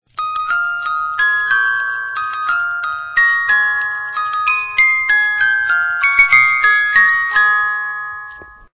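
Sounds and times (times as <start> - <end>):
tinkling: 0.1 - 8.7.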